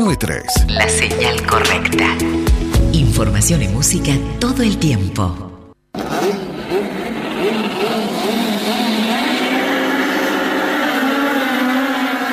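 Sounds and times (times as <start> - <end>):
speech: 0.0 - 5.5
touring race cars of a national touring championship accelerating: 6.0 - 12.3.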